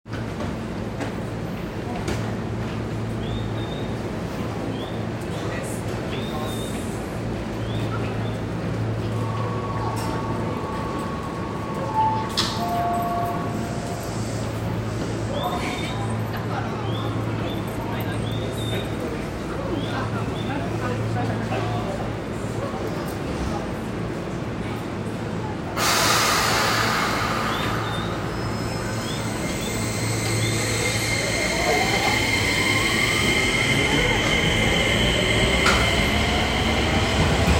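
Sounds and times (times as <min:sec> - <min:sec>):
Keio Line train approaching east of Meidaimae: 0:00.1 - 0:37.5.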